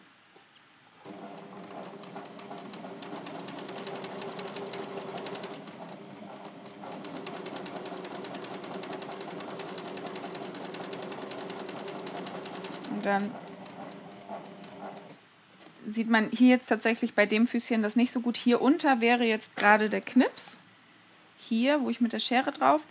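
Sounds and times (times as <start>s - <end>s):
sewing machine running a straight stitch on viscose fabric: 1.0s - 15.2s
speech: 13.0s - 13.4s, 15.9s - 20.6s, 21.5s - 22.8s.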